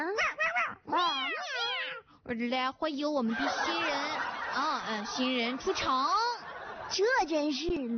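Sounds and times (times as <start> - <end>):
cats meowing: 0.0 - 2.1
speech: 2.3 - 6.2, 6.9 - 7.9
laughter: 3.3 - 7.6.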